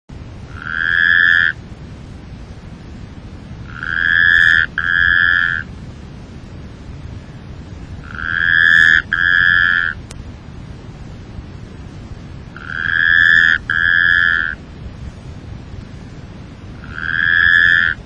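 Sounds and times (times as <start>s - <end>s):
Rhacophorus taipeianus calling: 0.5s - 1.6s, 3.6s - 5.7s, 8.0s - 10.0s, 12.5s - 14.6s, 16.8s - 18.0s.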